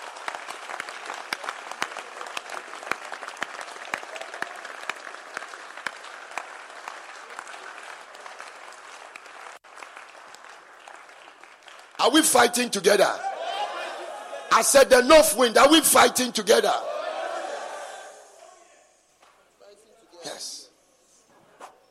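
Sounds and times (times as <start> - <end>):
audience clapping: 0.0 - 13.2
speech: 12.0 - 13.3, 14.5 - 16.9.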